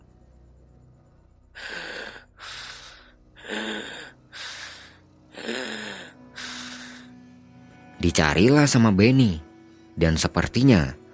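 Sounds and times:
heavy harsh sniffing and snorting breaths: 1.6 - 7.1
speech: 8.0 - 11.0.

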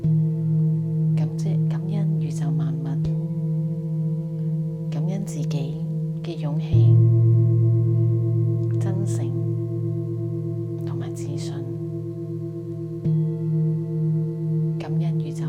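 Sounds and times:
deeper sustained tone: 0.0 - 15.4
singing bowl humming with low tone and ringing overtones: 0.0 - 15.4.

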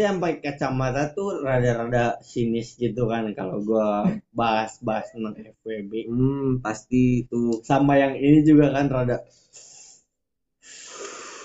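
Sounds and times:
speech: 0.0 - 9.4
breathy draw of air: 9.3 - 11.4.

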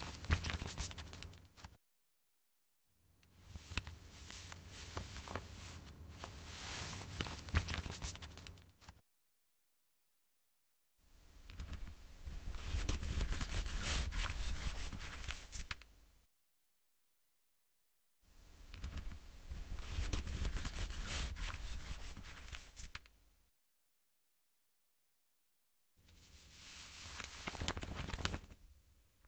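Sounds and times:
pages flipping and rustling: 0.0 - 1.8, 3.5 - 9.0, 11.6 - 15.9, 18.8 - 23.1, 26.6 - 28.6.

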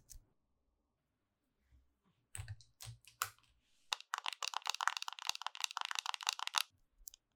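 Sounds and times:
sharp clicks and taps of makeup being applied: 2.4 - 6.7.

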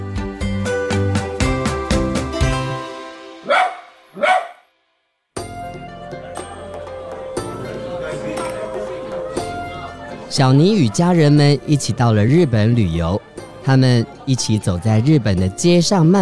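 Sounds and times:
busy street-like background with music: 0.0 - 4.6, 5.4 - 16.2
dog barking: 3.4 - 4.7
speech: 10.4 - 16.2.

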